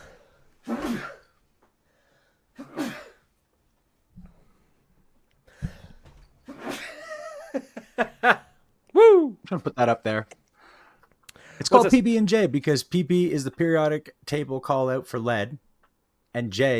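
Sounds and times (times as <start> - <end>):
sharp breathy stifled sneezes: 0.6 - 1.4, 2.6 - 3.2, 6.4 - 6.8
voiced laugh-like vocal sounds: 6.5 - 9.8
speech: 7.6 - 8.4, 9.5 - 10.4, 11.6 - 15.6, 16.4 - 16.7.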